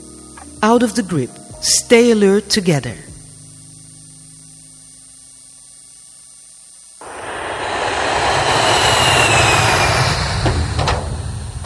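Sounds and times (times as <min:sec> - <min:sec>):
speech: 0:00.6 - 0:03.1
airplane engine roaring as airplane flies away: 0:07.0 - 0:11.6.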